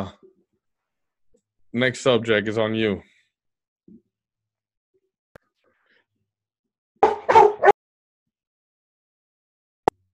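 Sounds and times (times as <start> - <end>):
speech: 0.0 - 0.2, 1.7 - 3.1
dog barking: 7.0 - 7.8.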